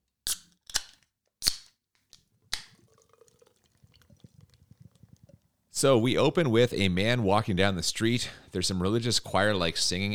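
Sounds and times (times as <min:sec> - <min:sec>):
drink can cracked open: 0:00.2 - 0:03.6
liquid fizzing: 0:02.5 - 0:05.6
speech: 0:05.8 - 0:10.1.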